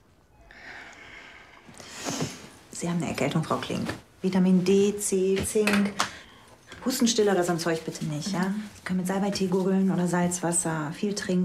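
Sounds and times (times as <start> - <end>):
deep breathing in and out by a patient with a cold during a doctor's examination: 0.4 - 2.6
speech: 2.8 - 6.1, 6.8 - 11.4.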